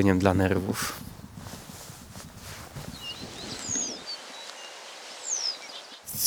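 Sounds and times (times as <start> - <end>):
low rustling: 0.0 - 6.2
western yellow wagtail giving raspy calls: 2.9 - 6.2.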